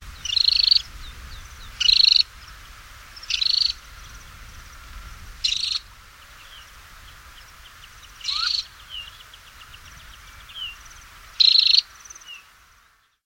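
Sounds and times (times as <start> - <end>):
Temminck's stint Calidris temminckii calling: 0.2 - 0.9, 1.7 - 2.4, 3.1 - 3.9, 5.4 - 12.4.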